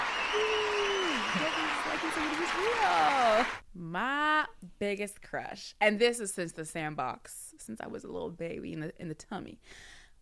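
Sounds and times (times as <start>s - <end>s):
crowd clapping: 0.0s - 3.6s
speech: 1.3s - 10.2s.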